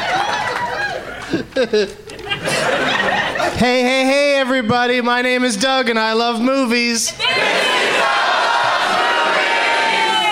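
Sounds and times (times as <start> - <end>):
comedy club audience cheering and whooping: 0.0 - 1.3, 7.2 - 10.3
laughter: 0.0 - 3.6
speech: 1.3 - 2.8, 3.5 - 7.8.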